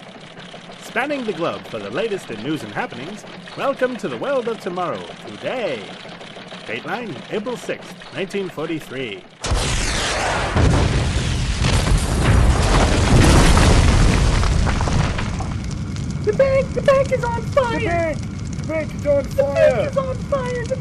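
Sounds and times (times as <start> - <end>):
speech: 1.0 - 6.1, 6.7 - 9.3, 16.4 - 20.7
rumbling explosion sound effect for a bank set on fire: 9.4 - 20.7.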